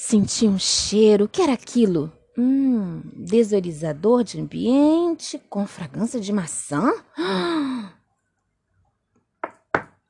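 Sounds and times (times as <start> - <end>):
speech: 0.1 - 8.0
knocking on a wooden door: 9.4 - 10.0.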